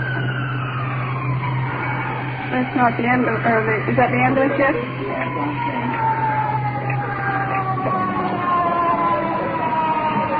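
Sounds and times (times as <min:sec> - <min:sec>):
ambulance siren wailing as the vehicle draws close: 0:00.0 - 0:10.3
steady low engine drone: 0:00.0 - 0:10.3
speech: 0:02.5 - 0:05.8.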